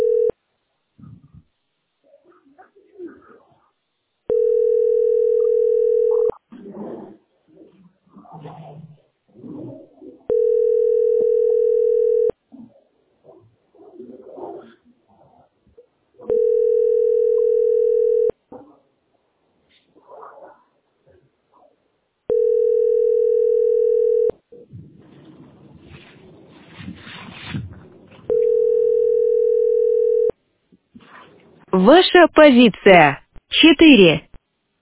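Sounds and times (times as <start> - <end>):
telephone ringback tone of an unanswered call: 0.0 - 0.3, 4.3 - 6.3, 10.3 - 12.4, 16.3 - 18.4, 22.3 - 24.4, 28.3 - 30.3
speech: 31.8 - 34.3.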